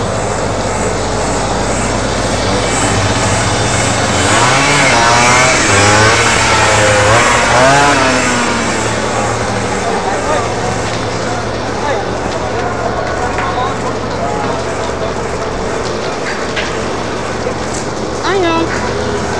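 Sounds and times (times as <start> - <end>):
loud noise: 0.0 - 19.3
moped engine approaching and revving: 0.0 - 19.3.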